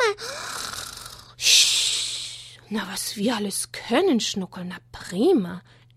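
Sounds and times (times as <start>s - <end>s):
person imitating loud snoring: 0.2s - 1.4s
speech: 2.7s - 5.8s.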